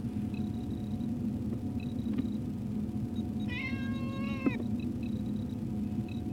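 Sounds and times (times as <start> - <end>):
steady low rumbling hum: 0.0 - 6.3
cat meowing: 3.5 - 4.6.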